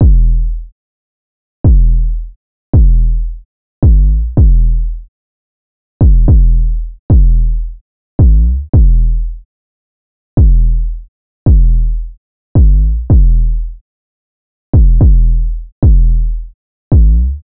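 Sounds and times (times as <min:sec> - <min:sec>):
808 drum machine loop in E: 0:00.0 - 0:00.7, 0:01.7 - 0:05.1, 0:06.0 - 0:09.4, 0:10.4 - 0:13.8, 0:14.8 - 0:17.4.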